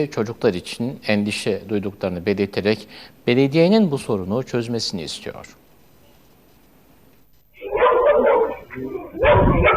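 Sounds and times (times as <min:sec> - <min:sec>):
speech: 0:00.0 - 0:05.6
stray dogs in a pack barking and yipping in Istanbul's Sarıyer district: 0:07.6 - 0:09.7.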